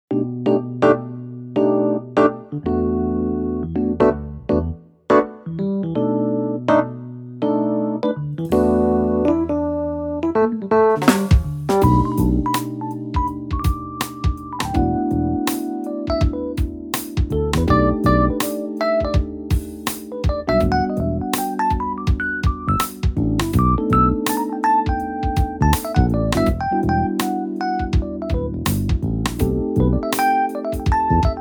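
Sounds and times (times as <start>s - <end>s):
electric piano: 0.1s - 31.3s.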